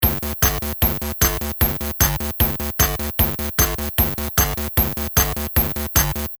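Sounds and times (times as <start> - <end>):
Tr 505 drum machine rhythm pattern: 0.0 - 6.3.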